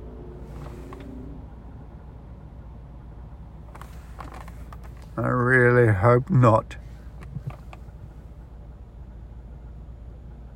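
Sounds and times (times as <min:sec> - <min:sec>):
creaking grinding mechanical noises from a car: 0:00.0 - 0:01.6, 0:03.7 - 0:05.4
car engine rumbling: 0:00.0 - 0:10.5
speech: 0:05.2 - 0:06.8.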